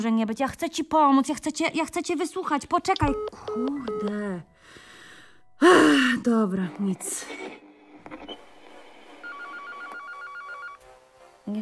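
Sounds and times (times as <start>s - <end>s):
speech: 0.0s - 4.5s, 5.6s - 7.6s
telephone ringing with electronic warble: 8.3s - 10.8s.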